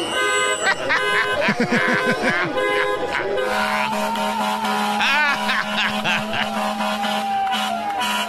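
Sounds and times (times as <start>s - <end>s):
many car horns honking in protest: 0.0s - 8.2s
laughter: 0.4s - 8.2s
people shouting: 0.8s - 8.2s.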